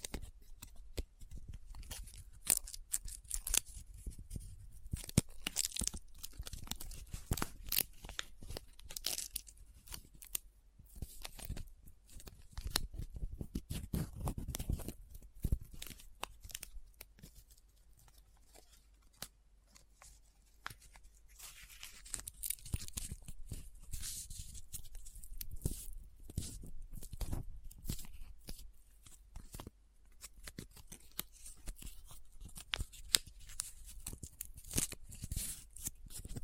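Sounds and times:
paper crinkling, rubbing and scratching close up: 0.0s - 36.4s.

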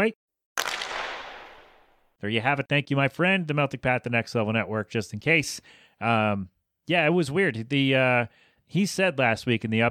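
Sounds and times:
hockey slap shot sound effect crack: 0.6s - 2.0s
speech: 2.2s - 9.8s.

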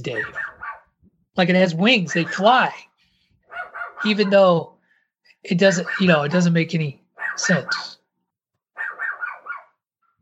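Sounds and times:
speech: 0.0s - 0.4s, 1.4s - 2.9s, 4.0s - 4.7s, 5.4s - 8.0s
dog yappy barking: 0.0s - 1.0s, 2.0s - 2.8s, 3.4s - 4.7s, 5.7s - 6.5s, 7.1s - 8.0s, 8.7s - 9.8s.

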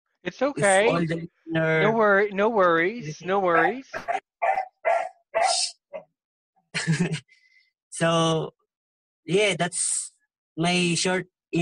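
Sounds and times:
speech: 0.2s - 4.2s, 6.8s - 7.4s, 8.0s - 8.6s, 9.3s - 11.5s
dog barking: 3.6s - 6.1s
laughter: 6.8s - 7.3s.

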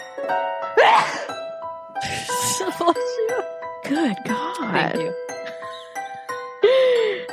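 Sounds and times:
speech: 0.3s - 1.4s, 2.0s - 5.3s
sharp sneeze: 0.8s - 1.3s.

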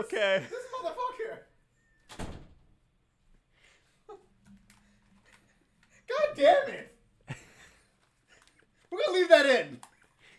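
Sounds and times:
speech: 0.0s - 0.6s, 6.4s - 6.9s, 9.0s - 9.9s
door swinging shut with a solid thump: 2.1s - 2.7s.

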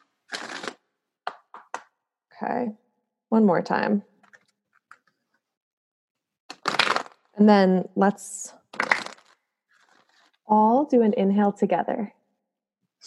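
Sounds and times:
deck of tarot cards being riffle shuffled: 0.3s - 1.8s, 8.7s - 10.4s
speech: 2.4s - 4.1s, 7.4s - 8.6s, 10.5s - 12.2s.

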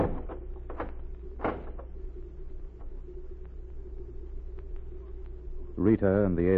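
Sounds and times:
heavy wooden barn door creaking and scraping shut: 0.0s - 1.9s
speech: 5.8s - 6.5s.

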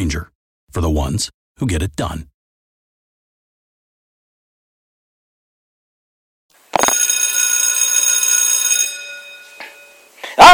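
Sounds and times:
speech: 0.0s - 2.3s
electric bell ringing signalling class start: 6.7s - 10.2s.

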